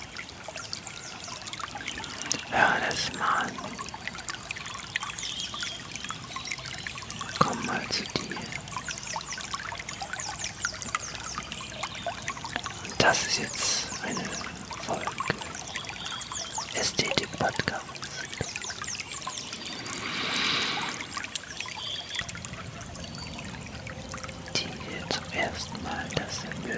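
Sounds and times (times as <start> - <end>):
water trickling: 0.0 - 26.7
person speaking quietly: 2.4 - 3.8, 7.4 - 8.6, 12.9 - 15.5, 16.7 - 18.5, 24.6 - 26.7
speech: 2.5 - 3.9.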